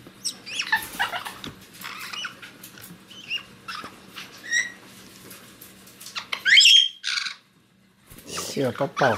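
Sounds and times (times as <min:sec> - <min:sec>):
caique chick squawking: 0:00.2 - 0:04.8, 0:06.1 - 0:07.5.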